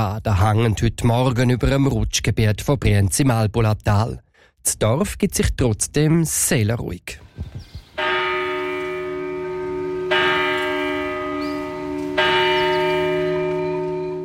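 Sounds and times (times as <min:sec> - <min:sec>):
speech: 0:00.0 - 0:07.7
bell of village church ringing on a cold foggy morning in Brienz Switzerland: 0:08.0 - 0:14.2.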